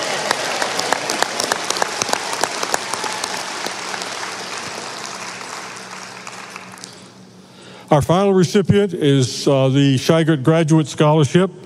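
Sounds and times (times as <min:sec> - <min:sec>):
audience applause: 0:00.0 - 0:07.2
speech: 0:07.9 - 0:11.6.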